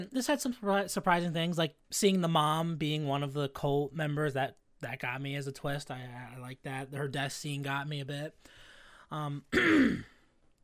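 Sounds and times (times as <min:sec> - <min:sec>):
speech: 0:00.0 - 0:10.1
person coughing forcefully with a harsh rasping hack: 0:09.5 - 0:10.2.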